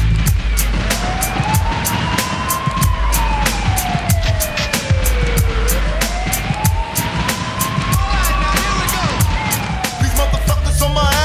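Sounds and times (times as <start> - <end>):
loud steady hip-hop beat with thumping bass: 0.0 - 11.2
police siren wailing: 0.0 - 11.2.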